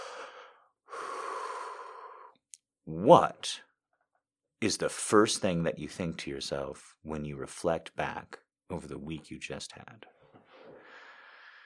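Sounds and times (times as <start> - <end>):
deep breath in and out during a relaxation exercise: 0.0 - 2.4, 10.4 - 11.6
speech: 2.9 - 3.7, 4.6 - 10.2.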